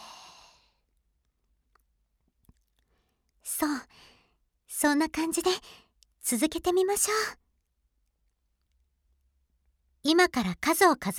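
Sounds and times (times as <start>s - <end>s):
person slowly breathing out during a guided relaxation exercise: 0.0s - 0.7s
faint small clicks: 0.9s - 3.4s, 5.9s - 6.2s, 7.5s - 9.0s
speech: 4.8s - 7.4s, 10.0s - 11.1s.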